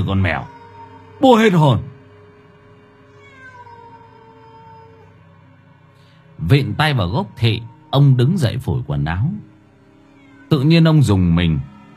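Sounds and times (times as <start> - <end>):
speech: 0.0 - 0.6, 1.2 - 1.9, 6.4 - 9.5, 10.5 - 11.7
stray cat meowing from a persimmon tree branch: 0.0 - 2.0, 2.9 - 5.3, 6.6 - 8.9, 9.9 - 10.8.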